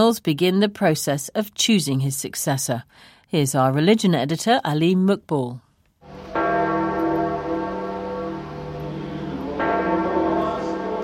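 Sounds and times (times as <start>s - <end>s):
speech: 0.0s - 6.3s
great church bell of St. Peter's tolling: 6.0s - 11.0s.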